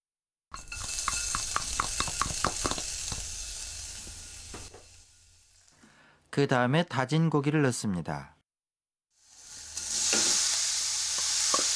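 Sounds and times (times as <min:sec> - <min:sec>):
finely chopped ginger sizzling in a hot pot: 0:00.5 - 0:05.9, 0:09.2 - 0:11.7
speech: 0:06.4 - 0:08.4.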